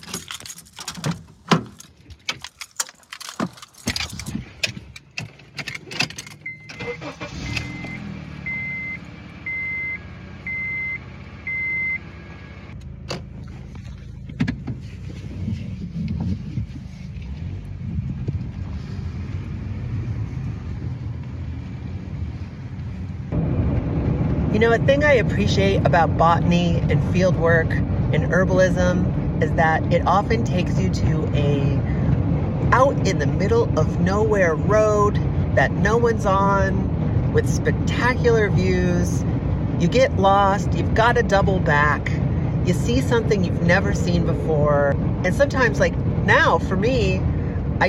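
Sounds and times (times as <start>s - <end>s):
keys jingling: 0.0s - 7.2s
car engine starting and rumbling as the car pulls away: 0.0s - 47.8s
speech: 24.6s - 31.9s, 32.7s - 47.8s.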